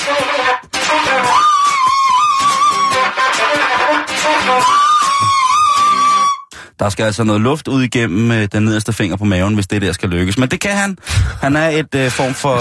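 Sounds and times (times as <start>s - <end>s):
two flutes playing a high melody: 0.0s - 6.5s
speech: 6.8s - 12.5s.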